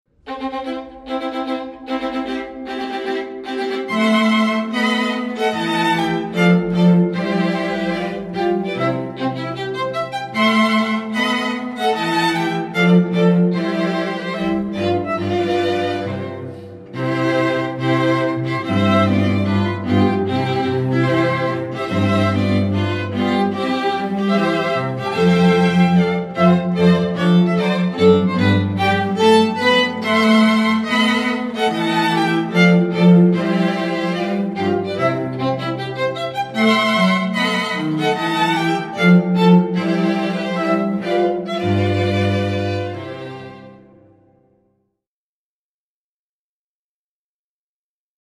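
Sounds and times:
string quartet playing: 0.2 - 44.3.

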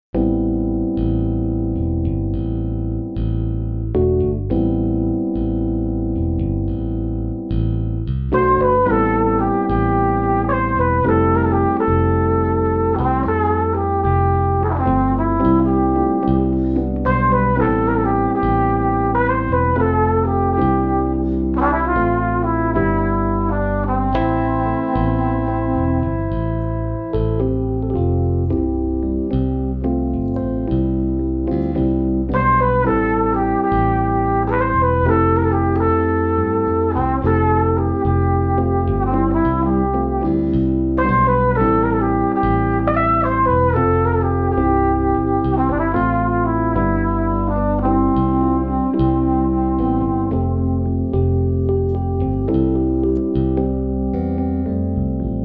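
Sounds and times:
jazz trio playing: 0.1 - 55.4.

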